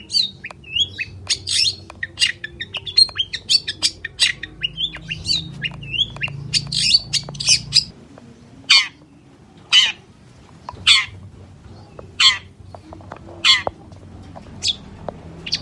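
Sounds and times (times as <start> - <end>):
long-tailed shrike giving loud rasping squawks in morning song: 0.0 - 7.9, 9.7 - 10.0, 10.8 - 11.2, 12.2 - 12.6, 13.4 - 13.8.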